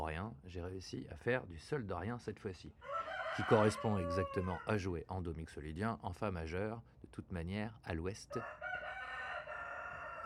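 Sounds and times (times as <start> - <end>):
speech: 0.3 - 8.6
rooster crowing: 2.8 - 4.8, 8.3 - 10.2.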